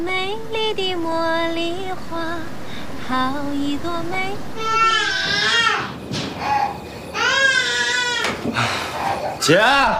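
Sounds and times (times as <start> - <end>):
speech: 0.0 - 5.7, 8.6 - 9.9
baby crying: 4.6 - 8.4.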